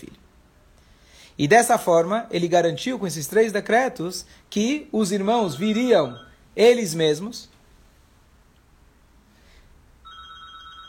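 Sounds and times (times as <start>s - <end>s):
quiet hum: 0.0s - 10.8s
speech: 1.4s - 7.5s
telephone ringing with a steady electronic tone: 5.6s - 6.4s, 10.0s - 10.8s.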